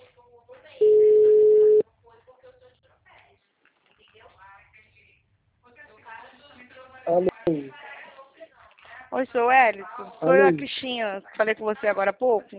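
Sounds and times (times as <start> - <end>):
telephone ringback tone on an outgoing call: 0.8 - 1.8
speech: 7.1 - 7.3, 9.1 - 12.5.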